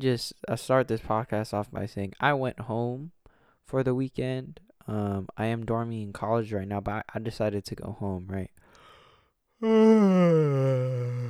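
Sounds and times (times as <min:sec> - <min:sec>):
speech: 0:00.0 - 0:08.6, 0:09.6 - 0:11.2
person yawning: 0:09.6 - 0:11.2.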